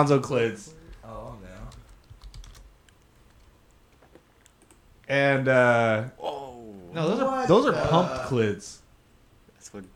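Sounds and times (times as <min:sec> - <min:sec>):
speech: 0:00.0 - 0:01.3, 0:05.1 - 0:08.8, 0:09.6 - 0:09.9
typing on a keyboard: 0:01.5 - 0:03.5.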